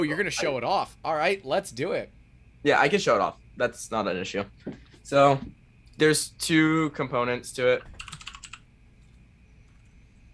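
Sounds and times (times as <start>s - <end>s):
speech: 0.0s - 8.0s
steady low hum: 0.0s - 10.3s
typing on a computer keyboard entering a website name into a browser: 7.8s - 9.9s.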